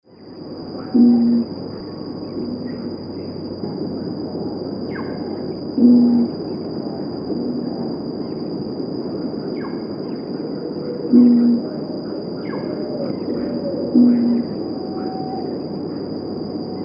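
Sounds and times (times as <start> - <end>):
Red-ruffed Fruitcrow Pyroderus scutatus calls: 0.8 - 2.8, 5.8 - 6.4, 11.1 - 11.7, 12.4 - 15.5.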